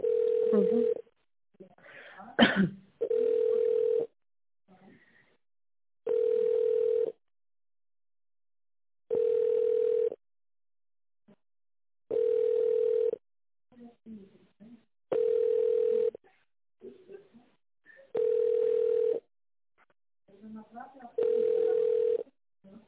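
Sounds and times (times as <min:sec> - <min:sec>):
telephone ringback tone while a call is put through to a reception desk: 0:00.0 - 0:01.0, 0:03.0 - 0:04.1, 0:06.1 - 0:07.2, 0:09.1 - 0:10.2, 0:12.1 - 0:13.2, 0:15.1 - 0:16.1, 0:18.2 - 0:19.2, 0:21.2 - 0:22.2.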